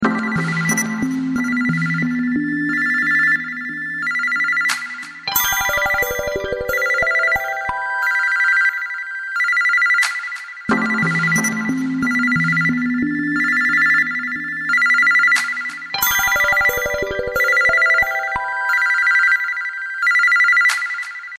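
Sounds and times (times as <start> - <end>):
mobile phone bird ringtone: 0.1 - 21.3.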